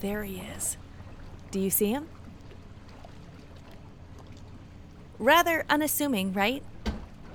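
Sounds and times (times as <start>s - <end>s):
speech: 0.0s - 0.8s, 1.5s - 2.2s, 5.2s - 6.7s
water lapping and sloshing against a small boat's hull: 0.0s - 7.3s
light splashes: 0.1s - 5.2s.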